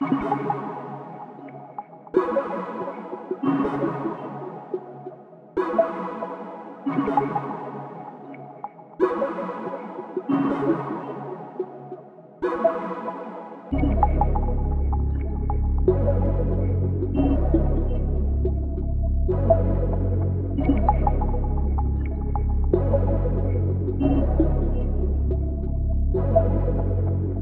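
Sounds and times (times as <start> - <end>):
music at 140 BPM in C sharp minor: 0.0 - 27.4.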